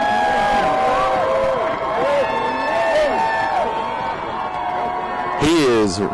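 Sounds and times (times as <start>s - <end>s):
crowd cheering for a sled dog musher: 0.0s - 6.1s.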